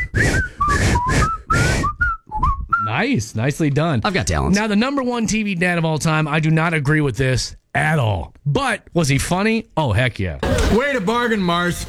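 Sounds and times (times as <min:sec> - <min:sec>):
person whistling a TV theme tune: 0:00.0 - 0:02.9
speech: 0:03.0 - 0:11.8.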